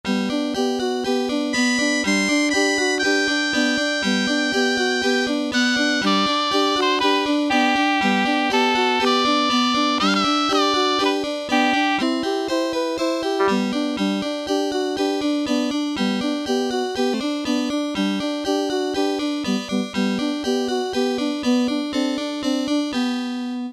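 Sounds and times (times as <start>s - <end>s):
baroque style demo on a Yamaha SHS-10 keyboard: 0.1s - 23.7s.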